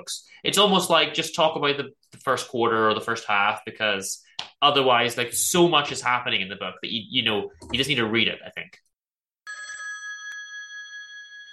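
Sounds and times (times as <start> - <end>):
speech: 0.0 - 8.9
telephone bell ringing: 9.4 - 11.5.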